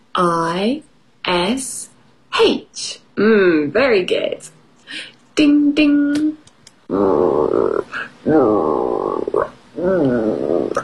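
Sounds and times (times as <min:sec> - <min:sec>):
speech: 0:00.2 - 0:10.8
voice imitating a bear's hungry stomach growling: 0:06.9 - 0:10.8.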